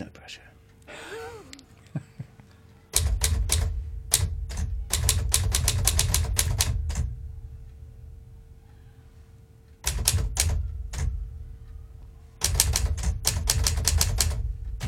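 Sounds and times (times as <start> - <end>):
low rumbling hum: 2.8 - 14.8
mechanical typewriter keys clacking: 2.9 - 7.1, 9.8 - 11.2, 12.4 - 14.8.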